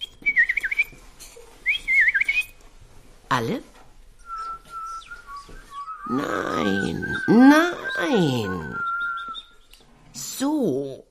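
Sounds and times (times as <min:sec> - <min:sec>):
person whistling an imitation of a bullfinch call: 0:00.0 - 0:01.0, 0:01.7 - 0:02.6, 0:04.2 - 0:09.7
speech: 0:03.3 - 0:03.7, 0:06.1 - 0:08.8.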